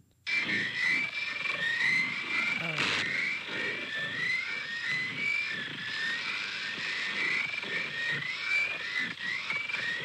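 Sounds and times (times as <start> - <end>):
distorted feedback-driven shortwave radio station noise: 0.3 - 10.0
faint garbled altered-sounding voice: 2.5 - 3.1.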